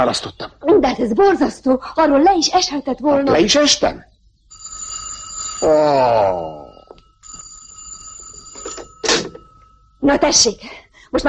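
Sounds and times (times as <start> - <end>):
speech: 0.0 - 4.1, 5.6 - 6.6, 10.0 - 11.2
old telephone bell ringing: 4.5 - 10.3
person groaning loudly: 5.6 - 6.8.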